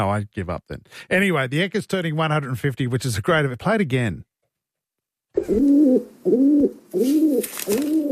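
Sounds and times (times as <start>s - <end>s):
speech: 0.0s - 4.3s, 5.3s - 8.1s
pigeon cooing: 5.4s - 8.1s.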